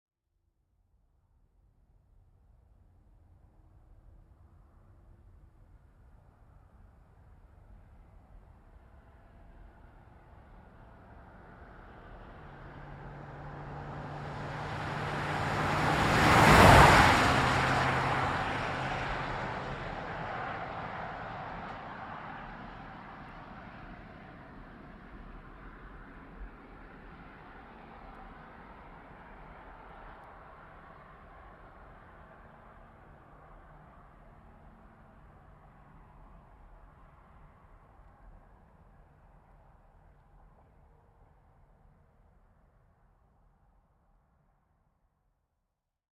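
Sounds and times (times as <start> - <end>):
2010 GMC Savana truck passing by fast: 10.6 - 35.7.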